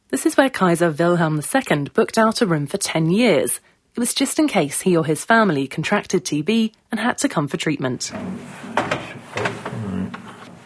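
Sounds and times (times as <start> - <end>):
speech: 0.1 - 9.0
wooden doors creaking as they swing: 8.0 - 10.6.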